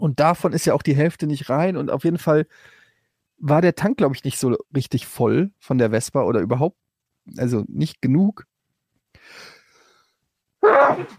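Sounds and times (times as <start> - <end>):
speech: 0.0 - 2.8, 3.4 - 8.5, 10.6 - 11.1
person sneezing: 10.6 - 11.1.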